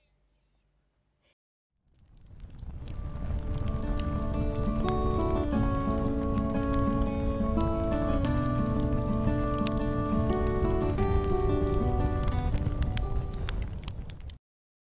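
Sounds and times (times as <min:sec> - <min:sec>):
campfire crackling and popping: 0:01.8 - 0:14.4
gentle sustained instrumental melody: 0:03.1 - 0:13.4.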